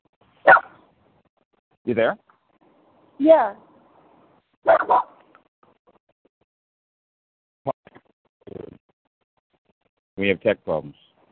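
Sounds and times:
puppy yipping outdoors: 0.4 - 0.7, 4.7 - 5.2
puppy barking outdoors: 0.4 - 0.8, 4.7 - 5.2
speech: 1.8 - 2.2, 3.2 - 3.7, 10.2 - 11.0.

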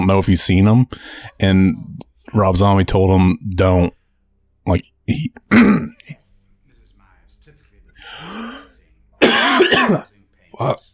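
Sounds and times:
speech: 0.0 - 4.0, 4.7 - 6.2, 9.6 - 10.9
strained voiced sound: 0.0 - 10.9
person coughing with something caught in the throat: 5.4 - 6.2, 8.0 - 10.8
throat clearing with something caught in the throat: 5.4 - 6.2, 8.0 - 10.8.

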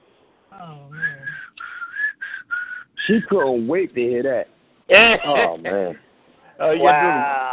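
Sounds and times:
speech: 0.5 - 1.0, 3.1 - 6.0, 6.6 - 7.5
person whistling: 0.9 - 3.4.

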